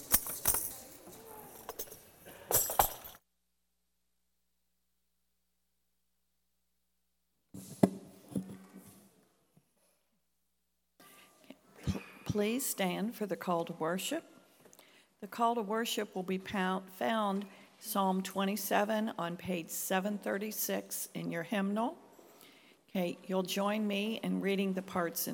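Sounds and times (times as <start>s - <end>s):
keys jangled by a church audience: 0.0s - 3.2s
speech: 12.4s - 14.3s, 15.3s - 22.0s, 22.9s - 25.3s.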